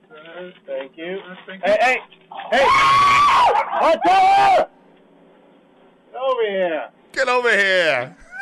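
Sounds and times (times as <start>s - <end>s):
speech: 0.3s - 4.8s, 6.2s - 8.2s
loud shrill human scream in a played clip: 2.5s - 4.7s.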